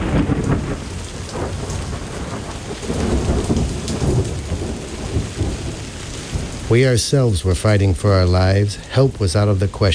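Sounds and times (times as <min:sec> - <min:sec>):
deep rolling thunder during a storm: 0:00.0 - 0:06.7
heavy downpour with steady rain hiss: 0:00.0 - 0:09.9
speech: 0:06.7 - 0:09.9.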